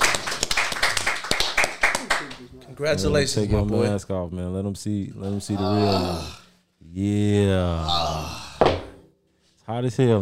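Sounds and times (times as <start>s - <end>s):
several people clapping: 0.0s - 2.6s
speech: 2.8s - 8.4s, 9.7s - 10.2s.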